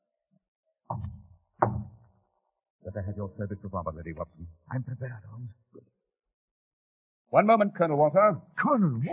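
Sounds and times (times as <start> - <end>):
taps on a door as a prearranged signal: 0.9 - 2.1
speech: 3.0 - 6.0, 7.3 - 9.1.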